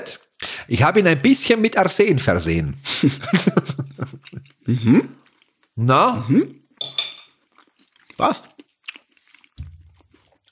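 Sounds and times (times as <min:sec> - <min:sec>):
speech: 0:00.0 - 0:04.1, 0:04.7 - 0:05.2, 0:05.8 - 0:06.6, 0:08.2 - 0:08.5
laughter: 0:02.9 - 0:05.0
crunchy chewing of a frozen cake: 0:04.0 - 0:05.8, 0:07.4 - 0:10.5.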